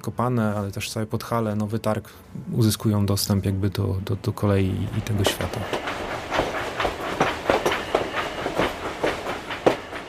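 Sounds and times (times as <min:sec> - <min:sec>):
speech: 0:00.0 - 0:06.1
train clattering along rails: 0:04.7 - 0:10.0.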